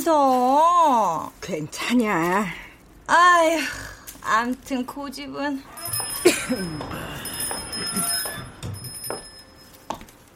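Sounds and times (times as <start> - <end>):
speech: 0.0 - 7.1
sustained ringing door bell chime: 5.7 - 9.9.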